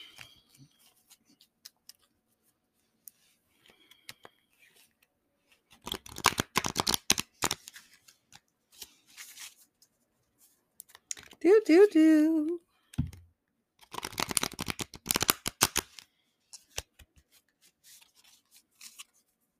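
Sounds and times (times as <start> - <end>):
deck of cards being shuffled with a riffle: 3.0 - 9.7, 10.8 - 11.4, 13.8 - 19.3
speech: 11.4 - 12.6.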